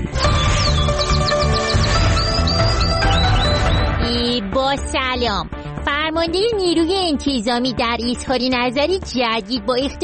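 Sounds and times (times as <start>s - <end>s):
canary chirping and trilling: 0.1s - 4.2s
speech: 4.7s - 10.0s.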